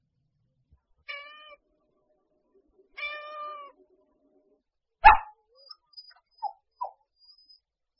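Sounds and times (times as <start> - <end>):
cat meowing: 1.1 - 1.6, 3.0 - 3.8.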